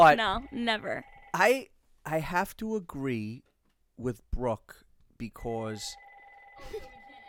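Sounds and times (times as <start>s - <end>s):
speech: 0.0s - 6.0s, 6.6s - 6.9s
house landline phone ringing: 0.3s - 1.4s, 5.8s - 7.2s.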